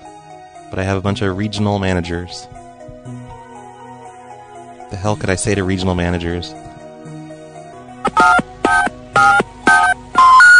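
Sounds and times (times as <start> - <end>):
speech: 0.7 - 2.6, 4.9 - 6.6
telephone keypad dialing tones during a prank phone call: 8.1 - 10.5.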